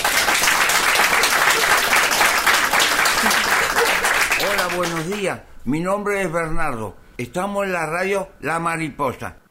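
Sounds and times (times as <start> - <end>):
audience applause: 0.0 - 5.3
speech: 4.8 - 9.4.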